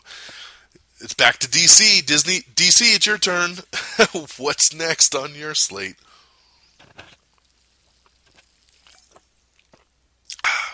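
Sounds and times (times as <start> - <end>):
speech: 1.0 - 6.2
wet mouth clicks and slurps from taking a sip of a drink: 7.4 - 10.6.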